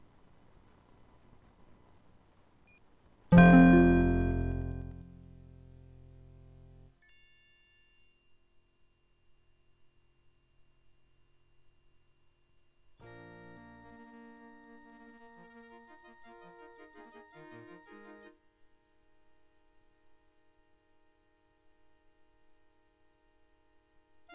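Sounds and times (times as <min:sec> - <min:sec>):
OPL3LPT synthesizer intro music: 0:03.4 - 0:06.5.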